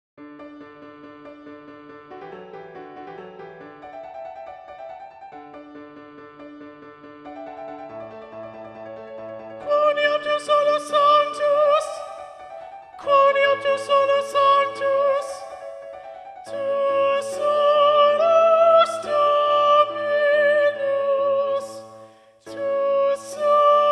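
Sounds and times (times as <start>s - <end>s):
soprano singing: 9.4s - 23.9s.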